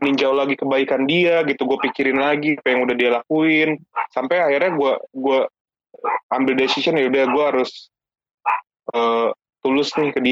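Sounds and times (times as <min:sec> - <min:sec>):
speech: 0:00.0 - 0:10.3
dog barking: 0:01.8 - 0:02.0, 0:03.9 - 0:04.9, 0:06.0 - 0:07.5, 0:08.4 - 0:08.7, 0:09.9 - 0:10.1.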